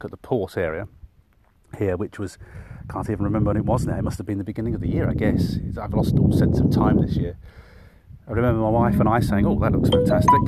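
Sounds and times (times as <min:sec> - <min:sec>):
speech: 0:00.0 - 0:01.0, 0:01.7 - 0:07.6, 0:08.3 - 0:10.4
two-tone phone notification chime: 0:09.9 - 0:10.4.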